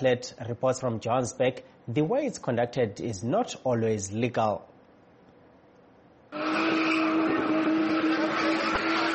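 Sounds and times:
speech: 0:00.0 - 0:04.7
car tires squealing as the car spins in tight circles: 0:06.4 - 0:09.1
turbocharged car engine revving hard during spinning: 0:06.4 - 0:09.1.

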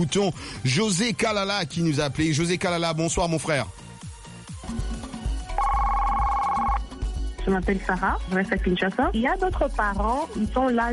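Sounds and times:
speech: 0:00.0 - 0:03.8, 0:07.4 - 0:10.9
telephone ringing for an incoming call: 0:05.5 - 0:06.9.

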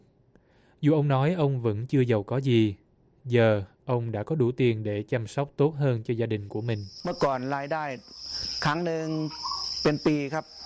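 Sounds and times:
speech: 0:00.8 - 0:10.6
farmed crickets chirping: 0:05.7 - 0:10.6.

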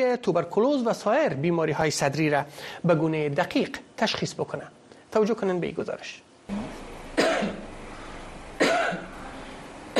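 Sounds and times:
speech: 0:00.0 - 0:06.6
forced coughs into a microphone: 0:06.6 - 0:07.7, 0:08.6 - 0:09.2.

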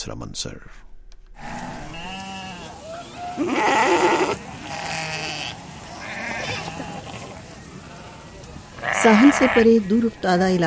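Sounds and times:
speech: 0:00.0 - 0:00.9, 0:03.4 - 0:04.4, 0:09.0 - 0:10.6
sheep and goats bleating among livestock being moved toward a port: 0:01.4 - 0:10.6.

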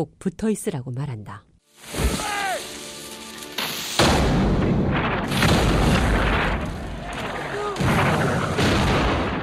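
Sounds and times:
speech: 0:00.0 - 0:02.0
broadband rumbling crashes: 0:04.0 - 0:09.4
heavy artillery cannon blasts during battle: 0:04.0 - 0:09.4.

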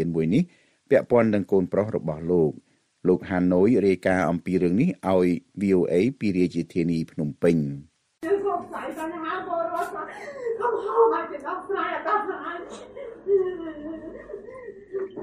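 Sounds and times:
speech: 0:00.0 - 0:07.9, 0:08.5 - 0:14.3
journalist's tearful broken speech: 0:06.9 - 0:15.2
journalist crying loudly in a broadcast newsroom: 0:12.7 - 0:15.2.

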